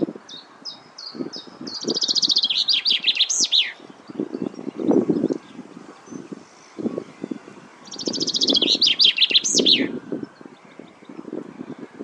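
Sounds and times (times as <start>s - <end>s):
common chaffinch singing: 0.0s - 12.0s.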